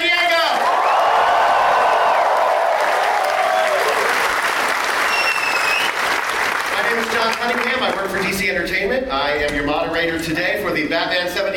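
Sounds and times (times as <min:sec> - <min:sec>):
convention audience cheering and whooping: 0:00.0 - 0:06.7
large convention audience applauding: 0:00.0 - 0:08.4
speech: 0:07.4 - 0:11.5.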